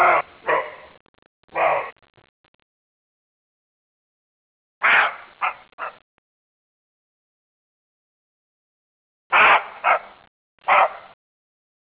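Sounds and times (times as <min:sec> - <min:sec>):
roe deer barking: 0:00.0 - 0:00.9, 0:01.5 - 0:01.9, 0:04.8 - 0:06.0, 0:09.3 - 0:11.2.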